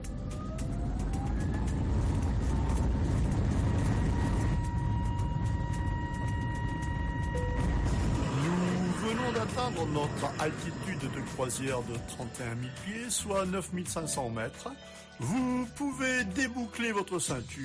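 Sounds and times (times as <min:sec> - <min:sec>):
airliner engine roar while taking off: 0:00.0 - 0:12.4
speech: 0:09.6 - 0:17.6.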